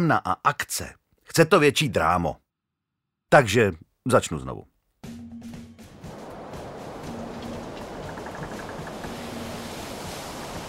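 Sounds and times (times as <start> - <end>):
speech: 0.0 - 2.4, 3.3 - 4.7
stormy sea waves crashing: 5.8 - 10.6
gusting wind: 5.9 - 10.6.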